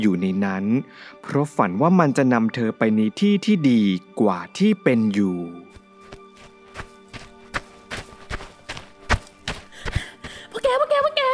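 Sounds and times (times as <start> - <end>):
speech: 0.0 - 5.6
running footsteps: 5.7 - 10.8.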